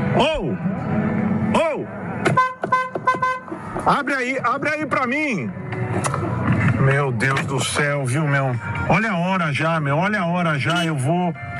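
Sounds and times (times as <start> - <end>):
speech: 0.2 - 1.2, 3.9 - 6.2, 6.9 - 11.5
car horn honking at a gate: 2.2 - 3.7.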